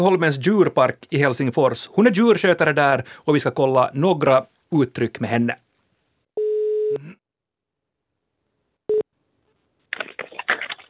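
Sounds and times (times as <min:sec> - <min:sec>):
speech: 0:00.0 - 0:05.6
telephone ringing tone over a line: 0:06.4 - 0:07.0.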